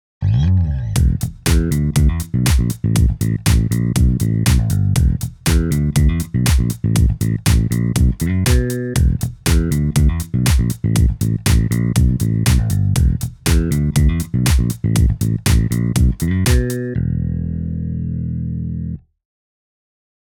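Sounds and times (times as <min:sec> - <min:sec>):
VST bass: 0:00.2 - 0:19.2.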